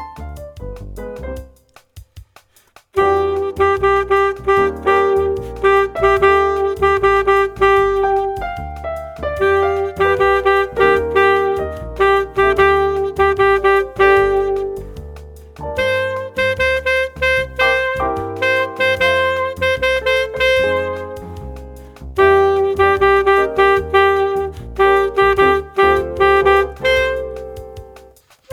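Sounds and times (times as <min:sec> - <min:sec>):
saxophone single note: 0:03.0 - 0:08.7, 0:09.4 - 0:14.9, 0:15.8 - 0:21.3, 0:22.2 - 0:27.4.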